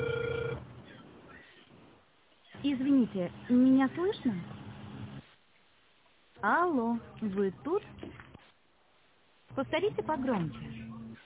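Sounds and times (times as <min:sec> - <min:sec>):
telephone ringback tone while a call is dialed: 0:00.0 - 0:00.6
speech: 0:02.6 - 0:04.6, 0:06.4 - 0:08.2, 0:09.6 - 0:10.8.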